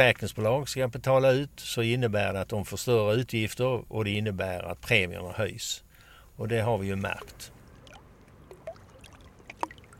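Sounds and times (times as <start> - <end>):
speech: 0.0 - 7.6
soft water lapping at a boatyard jetty: 6.8 - 9.9.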